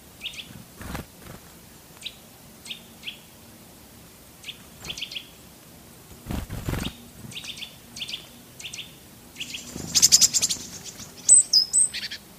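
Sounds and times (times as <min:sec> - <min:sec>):
Eurasian nuthatch calls under a bird-feeding ball: 0:00.2 - 0:00.5, 0:04.4 - 0:05.3, 0:06.7 - 0:12.2
great tit calls: 0:00.2 - 0:00.5, 0:02.0 - 0:03.4, 0:04.4 - 0:05.4, 0:06.7 - 0:12.3.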